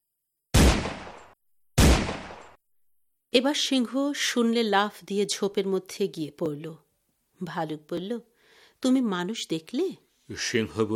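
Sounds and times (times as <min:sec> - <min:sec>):
man's gun firing in a forest: 0:00.6 - 0:02.6
speech: 0:03.3 - 0:06.8, 0:07.4 - 0:10.9.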